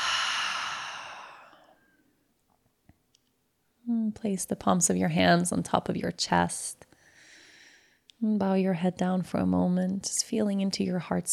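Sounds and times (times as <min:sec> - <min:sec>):
deep breath exhaled through an open mouth during a guided meditation: 0:00.0 - 0:01.8
speech: 0:04.1 - 0:06.8, 0:08.2 - 0:11.3.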